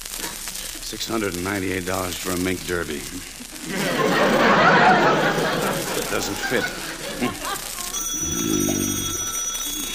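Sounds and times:
speech: 0:00.9 - 0:07.6
laughter: 0:03.4 - 0:08.0
old-style telephone bell ringing: 0:07.9 - 0:09.9.

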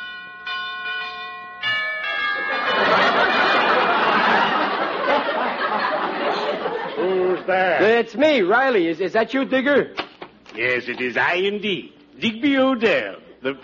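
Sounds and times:
house doorbell chiming two clear tones: 0:00.0 - 0:04.4
laughter: 0:02.3 - 0:07.8
speech: 0:07.5 - 0:10.0, 0:10.6 - 0:13.6.

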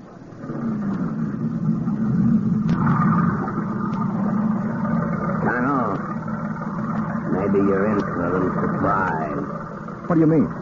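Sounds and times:
motorboat engine running with a low droning rumble: 0:00.0 - 0:10.6
speech: 0:07.5 - 0:10.6.

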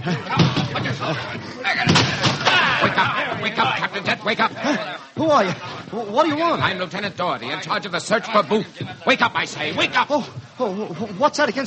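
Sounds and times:
speech: 0:00.0 - 0:02.3, 0:02.9 - 0:11.6
laughter: 0:00.0 - 0:05.9
banging and rough clatter: 0:00.3 - 0:01.2, 0:01.8 - 0:04.2
voices shouting: 0:01.0 - 0:05.7
door being broken in: 0:01.8 - 0:03.1.

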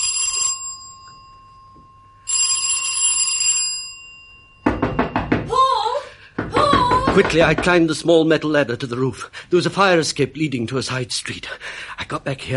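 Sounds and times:
doorbell ringing: 0:00.0 - 0:05.5
loud knocks on a door: 0:04.6 - 0:05.6, 0:06.4 - 0:08.0
speech: 0:07.2 - 0:12.5.

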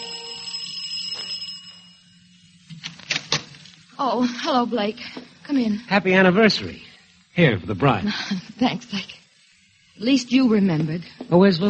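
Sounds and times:
apartment doorbell ringing: 0:00.0 - 0:02.5
speech: 0:04.0 - 0:09.2, 0:10.0 - 0:11.6.

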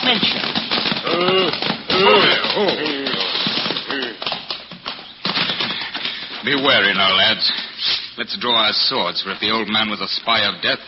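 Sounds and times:
horse hoofbeats clattering: 0:00.0 - 0:08.0
speech: 0:00.1 - 0:00.6, 0:01.2 - 0:02.7, 0:06.5 - 0:10.8.

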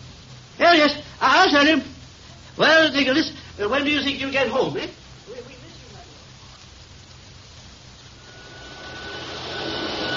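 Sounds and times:
speech: 0:00.6 - 0:01.9, 0:02.6 - 0:05.0
vacuum cleaner running with a whirring roar and faint whine: 0:08.2 - 0:10.1.

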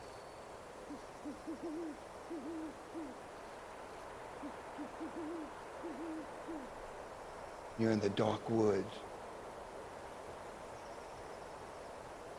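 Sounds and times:
wind hiss: 0:00.0 - 0:12.3
owl hooting: 0:00.8 - 0:03.2, 0:04.3 - 0:06.8
speech: 0:01.2 - 0:03.3, 0:04.4 - 0:06.8, 0:07.8 - 0:09.1.

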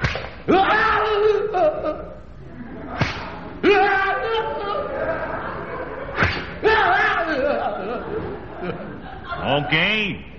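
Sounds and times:
whip lashes on an oiled back as punishment: 0:00.0 - 0:00.4, 0:03.0 - 0:03.4, 0:06.2 - 0:06.6
speech: 0:00.5 - 0:00.8, 0:09.4 - 0:10.3
small crowd shouting excitedly: 0:00.5 - 0:01.5, 0:03.4 - 0:05.6, 0:06.2 - 0:07.8
pained yells: 0:00.5 - 0:01.6, 0:03.6 - 0:05.0, 0:06.6 - 0:07.6
laughter: 0:01.0 - 0:10.2.

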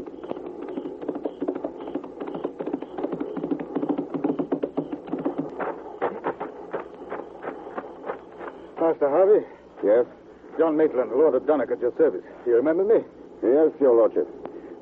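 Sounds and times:
hoofbeats of a horse carrying a rider at night near a battle camp: 0:00.0 - 0:09.0
speech: 0:08.9 - 0:14.8.

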